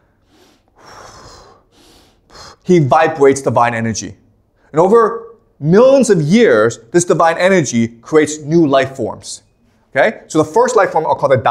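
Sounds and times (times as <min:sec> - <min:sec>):
voice imitating a deep breath: 0:00.0 - 0:02.7
speech: 0:02.7 - 0:11.4.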